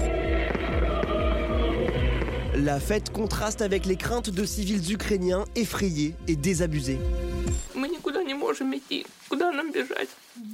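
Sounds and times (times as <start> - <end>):
fireworks exploding at a street celebration: 0.0 - 3.0
crowd noise at a street celebration: 0.0 - 4.0
speech: 2.6 - 7.6, 8.6 - 10.5.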